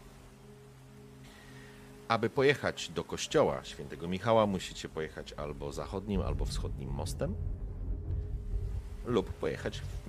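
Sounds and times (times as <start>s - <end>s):
light rain falling: 0.0s - 10.0s
speech: 2.1s - 7.6s, 9.0s - 10.0s
low constant hum: 5.0s - 10.0s.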